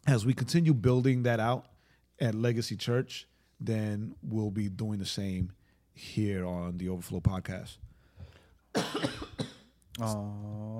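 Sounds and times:
speech: 0:00.1 - 0:07.9, 0:08.7 - 0:09.2, 0:10.0 - 0:10.7
harsh cough: 0:08.7 - 0:09.8.

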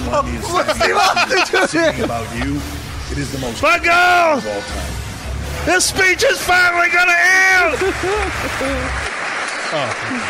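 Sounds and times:
laughter: 0:00.0 - 0:02.9, 0:07.6 - 0:09.1
speech: 0:00.1 - 0:05.0, 0:05.6 - 0:09.1, 0:09.7 - 0:10.2
crowd applauding: 0:07.6 - 0:10.2.

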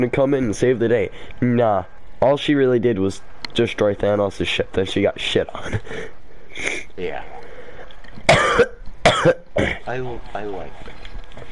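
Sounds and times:
speech: 0:00.0 - 0:07.4, 0:08.2 - 0:11.0
person coughing harshly: 0:08.3 - 0:09.8.

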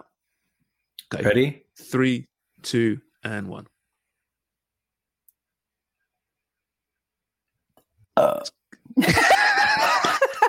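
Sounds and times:
speech: 0:01.1 - 0:03.7, 0:08.4 - 0:09.2
person belching: 0:08.2 - 0:08.6
laughter: 0:09.0 - 0:10.4.

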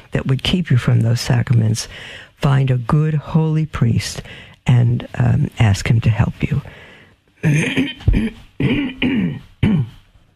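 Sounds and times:
speech: 0:00.1 - 0:06.8, 0:07.4 - 0:09.4
rough gravelly throat clearing into microphone: 0:07.4 - 0:10.1.

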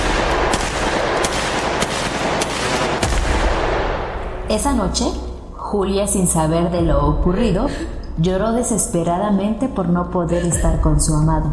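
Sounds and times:
handgun gunshots: 0:00.0 - 0:04.3
speech: 0:04.5 - 0:11.5.

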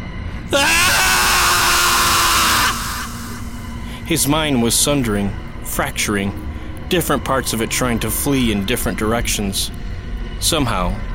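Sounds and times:
speech: 0:00.5 - 0:00.8, 0:04.1 - 0:09.8, 0:10.4 - 0:11.1
man screaming: 0:00.5 - 0:03.5
faint hiss: 0:02.0 - 0:04.2.

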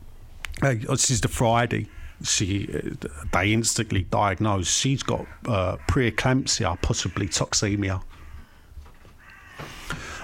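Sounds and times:
speech: 0:00.6 - 0:08.2
crows cawing: 0:01.7 - 0:04.0, 0:04.9 - 0:10.2.

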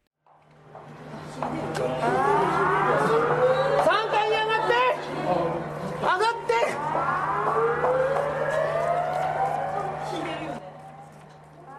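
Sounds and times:
tsunami warning siren wailing from loudspeakers in a city by the sea: 0:02.0 - 0:11.4.

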